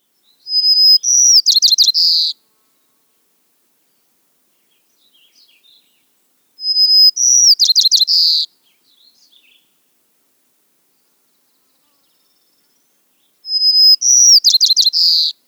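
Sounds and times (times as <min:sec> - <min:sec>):
white-crowned sparrow singing: 0:00.2 - 0:02.4, 0:04.6 - 0:09.7, 0:12.1 - 0:15.4.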